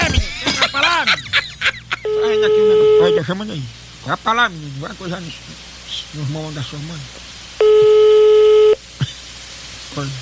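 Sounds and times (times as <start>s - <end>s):
laughter: 0.0s - 2.4s, 9.0s - 9.3s
electronic telephone tone on a call: 2.0s - 3.2s, 7.6s - 8.8s
speech: 2.4s - 7.2s, 9.9s - 10.2s.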